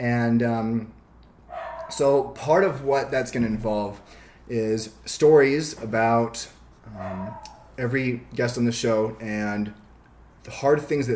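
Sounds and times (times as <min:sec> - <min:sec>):
speech: 0:00.0 - 0:01.0, 0:01.9 - 0:09.8, 0:10.4 - 0:11.1
dogs barking: 0:01.5 - 0:02.0, 0:06.9 - 0:07.7.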